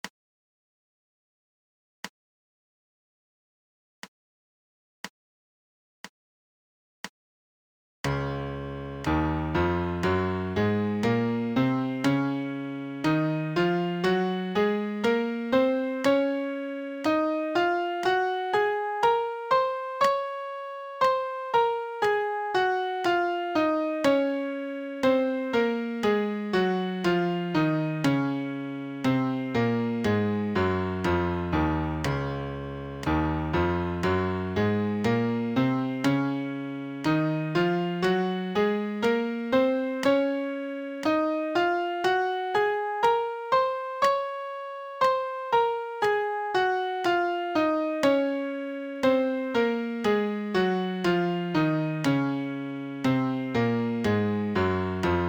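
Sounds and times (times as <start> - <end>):
MIDI major scale: 8.1 - 55.2.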